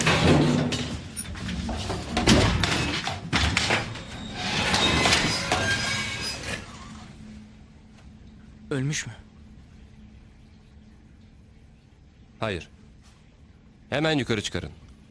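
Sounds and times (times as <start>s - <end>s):
heavy drawer sliding open with a scraping rumble: 0.0s - 6.9s
speech: 8.7s - 9.2s, 12.4s - 12.8s, 13.9s - 15.0s.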